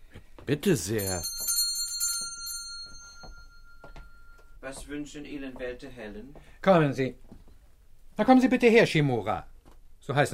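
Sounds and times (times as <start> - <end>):
speech: 0.5 - 1.4, 4.7 - 7.4, 8.2 - 9.5, 10.1 - 10.3
small bell rung by pulling a bell pull: 0.9 - 4.8.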